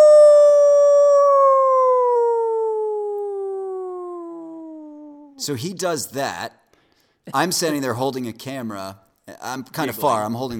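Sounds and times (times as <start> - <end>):
person imitating a wolf howl: 0.0 - 5.4
speech: 5.4 - 6.6, 7.2 - 10.5.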